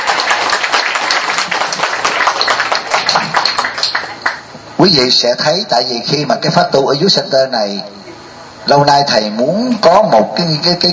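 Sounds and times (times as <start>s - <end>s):
audience applause at a Buddhist Dharma gathering: 0.0s - 4.4s
speech: 4.8s - 8.0s, 8.7s - 10.9s.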